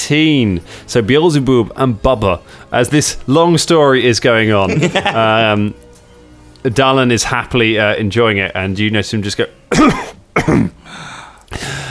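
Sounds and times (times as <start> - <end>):
speech: 0.1 - 5.8, 6.6 - 11.8
laughter: 4.6 - 5.7
person imitating a cough: 9.7 - 10.8.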